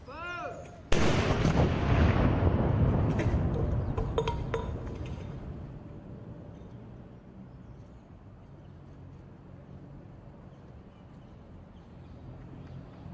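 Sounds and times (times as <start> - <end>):
ceremonial salute cannon shot booming: 0.9 - 5.6.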